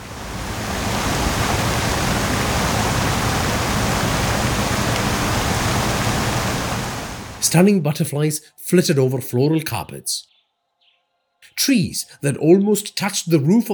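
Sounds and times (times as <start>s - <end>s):
roar of rushing water from waterfalls in an indoor tropical forest dome: 0.0s - 7.4s
speech: 7.4s - 10.3s, 11.5s - 13.7s.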